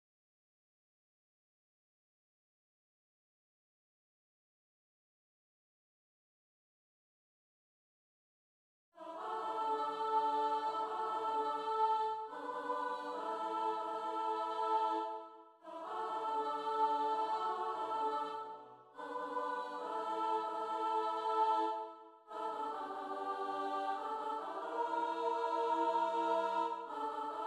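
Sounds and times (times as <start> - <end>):
soprano and alto voices: 9.0 - 27.4.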